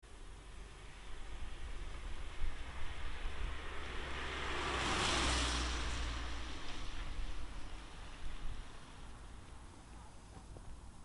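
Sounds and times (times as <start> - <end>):
car passing by: 0.4 - 9.9.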